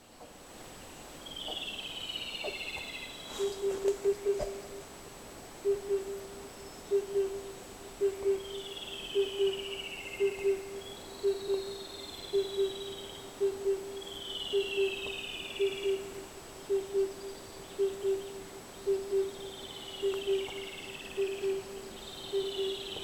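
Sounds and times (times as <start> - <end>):
two male Luscinia sibilans singing: 0.0 - 4.6, 5.7 - 16.1, 16.7 - 23.0.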